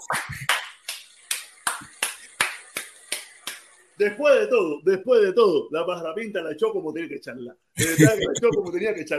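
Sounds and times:
single pair of hands clapping: 0.0s - 3.7s
speech: 4.0s - 9.1s
laughter: 7.8s - 8.8s.

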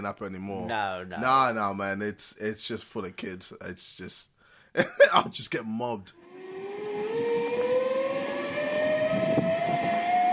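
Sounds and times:
speech: 0.0s - 6.2s
airplane engine roar passing overhead: 6.2s - 10.3s.

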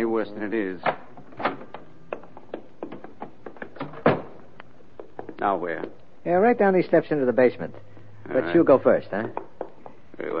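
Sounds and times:
speech: 0.2s - 1.1s, 5.4s - 9.4s
basement door thunk: 2.8s - 4.4s.

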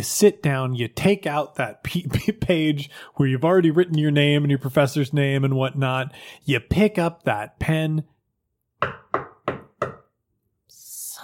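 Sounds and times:
speech: 0.0s - 8.1s, 8.8s - 10.0s
firm knocking on a wooden door: 8.8s - 10.1s.

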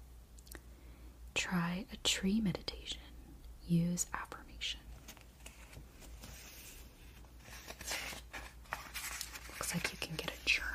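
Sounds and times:
speech: 1.5s - 3.1s, 3.7s - 4.8s, 9.7s - 10.7s
magazine pages being turned: 4.9s - 10.7s.

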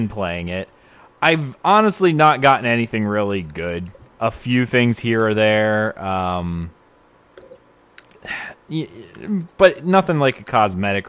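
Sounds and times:
speech: 0.0s - 6.8s, 8.2s - 11.0s
computer keyboard keys clicking: 3.3s - 4.0s, 7.3s - 8.2s, 9.0s - 11.0s.

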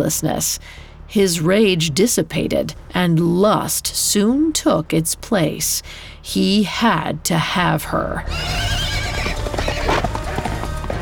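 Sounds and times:
steady low rumble: 0.0s - 8.4s
speech: 0.0s - 9.4s
horse whinnying with a wavering high cry: 8.2s - 10.6s
horse hooves clopping rhythmically: 8.3s - 11.0s.

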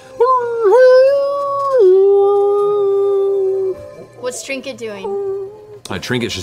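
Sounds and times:
human voices imitating wolves howling in unison: 0.2s - 4.2s, 5.0s - 5.8s
speech: 4.5s - 6.4s.

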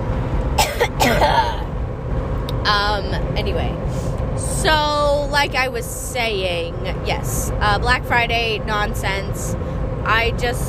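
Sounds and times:
steady low hum: 0.0s - 10.6s
raspy cough: 0.6s - 1.7s
speech: 2.7s - 10.6s.

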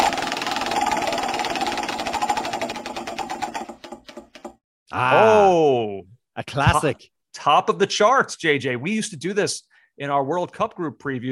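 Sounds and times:
prize wheel pointer clattering as the wheel spins: 0.0s - 4.3s
speech: 4.9s - 11.3s.

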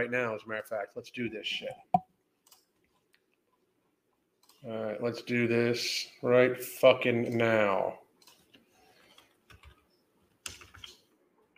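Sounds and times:
speech: 0.0s - 2.0s, 4.6s - 8.0s
typing on a computer keyboard: 8.2s - 9.8s, 10.4s - 11.0s.

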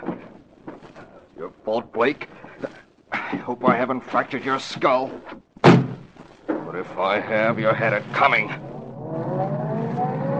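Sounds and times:
speech: 1.4s - 2.7s, 3.5s - 5.4s, 6.7s - 9.2s
car engine accelerating out of a parking lot: 7.6s - 10.3s.

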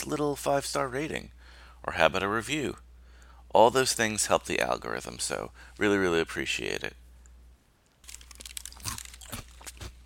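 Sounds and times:
speech: 0.0s - 2.8s, 3.5s - 7.0s
crunchy snack being chewed: 8.0s - 10.0s.

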